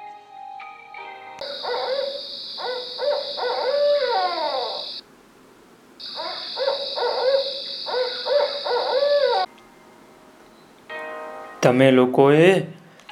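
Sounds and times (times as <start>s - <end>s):
owl hooting: 1.4s - 5.0s, 6.0s - 9.5s
steady hiss: 1.4s - 11.0s
speech: 11.7s - 12.8s.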